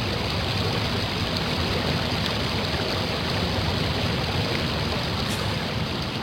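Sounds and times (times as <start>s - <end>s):
river water rushing: 0.0s - 6.2s.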